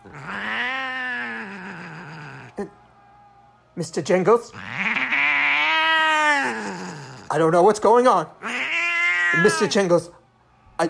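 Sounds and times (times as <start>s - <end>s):
cat yowling: 0.0s - 2.7s, 4.5s - 7.3s, 8.4s - 9.8s
speech: 2.6s - 2.8s, 3.8s - 4.8s, 7.3s - 8.5s, 9.3s - 10.2s.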